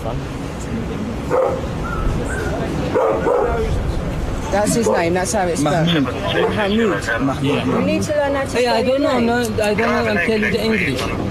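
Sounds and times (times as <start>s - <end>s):
speech: 0.0s - 2.0s, 4.5s - 11.3s
dog barking: 1.3s - 1.7s, 2.9s - 3.7s.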